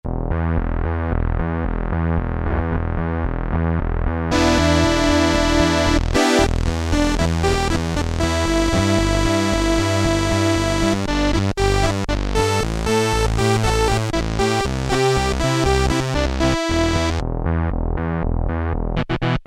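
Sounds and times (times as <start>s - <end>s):
Korg Poly-800 synth bass with Synthe Bass II patch: 0.0s - 19.3s.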